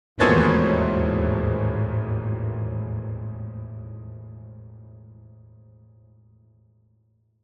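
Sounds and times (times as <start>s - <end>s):
higher piano danger chord: 0.2s - 5.5s.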